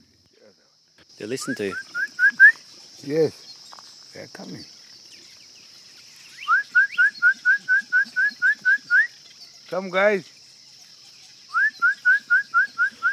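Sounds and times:
steady high insect drone outdoors: 0.0s - 13.1s
man whistling to lure crocodiles: 1.7s - 2.6s, 6.4s - 9.1s, 11.5s - 13.1s.

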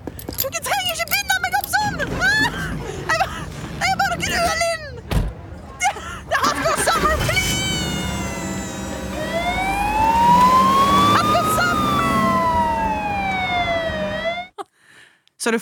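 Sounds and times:
traffic rumble: 0.0s - 14.5s
laughter: 5.6s - 8.6s
ambulance siren wailing: 7.2s - 14.5s
speech: 15.5s - 15.6s.

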